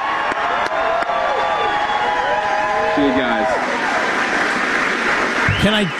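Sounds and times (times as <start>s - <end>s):
whoops from crowd: 0.0s - 4.0s
crowd applauding and cheering: 0.0s - 5.9s
speech: 5.6s - 5.9s.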